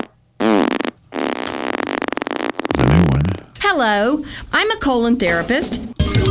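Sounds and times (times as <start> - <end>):
loud fart: 0.0 - 3.5
speech: 3.8 - 6.2.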